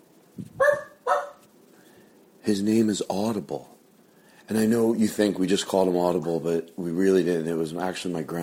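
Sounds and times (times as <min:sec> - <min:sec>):
dog barking: 0:00.6 - 0:01.4
speech: 0:02.5 - 0:03.8, 0:04.5 - 0:08.4.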